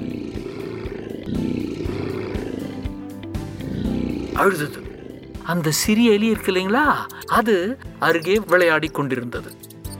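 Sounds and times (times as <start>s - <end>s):
lion roaring loudly: 0.0s - 6.6s
speech: 4.4s - 4.9s, 5.5s - 9.6s.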